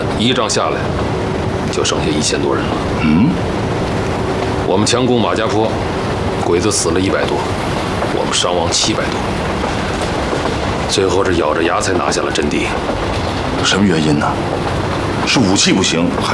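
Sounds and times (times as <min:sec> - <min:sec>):
train rolling along the rails: 0:00.0 - 0:16.3
speech: 0:00.2 - 0:03.6, 0:04.7 - 0:09.5, 0:10.9 - 0:16.3.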